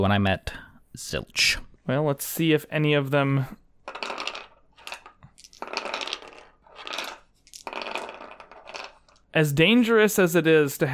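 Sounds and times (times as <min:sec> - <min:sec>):
speech: 0:00.0 - 0:03.6, 0:09.3 - 0:10.9
dice clattering and rattling across a hard surface: 0:03.8 - 0:09.4.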